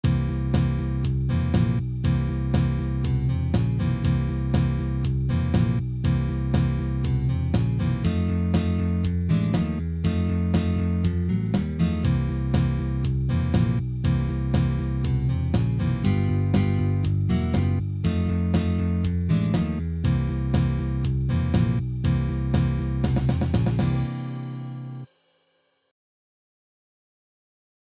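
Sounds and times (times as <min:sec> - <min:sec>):
blues seventh chords: 0:00.0 - 0:25.1.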